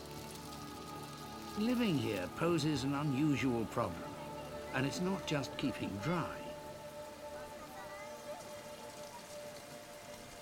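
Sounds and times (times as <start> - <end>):
heavy monsoon rain pouring down on surfaces: 0.0 - 10.3
speech: 1.6 - 6.4.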